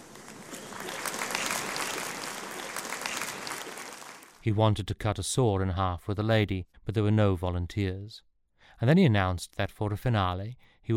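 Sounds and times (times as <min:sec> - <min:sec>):
small audience clapping: 0:00.0 - 0:04.4
speech: 0:04.4 - 0:10.9.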